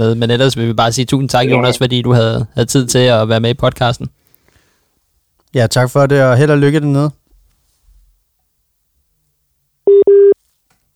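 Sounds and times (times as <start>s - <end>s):
speech: 0.0s - 4.2s, 5.5s - 7.2s
telephone busy tone after a dropped call: 9.9s - 10.4s.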